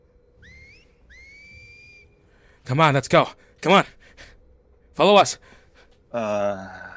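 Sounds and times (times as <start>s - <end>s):
low hum: 0.0s - 6.9s
person whistling as in-game signal: 0.4s - 2.1s
speech: 2.7s - 4.0s, 5.0s - 6.8s.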